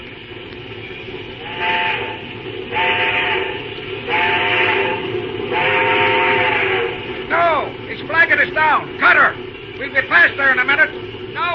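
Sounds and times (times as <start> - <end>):
steady low rumble: 0.0 - 11.5
steam locomotive whistle blown at a red signal light: 1.4 - 8.5.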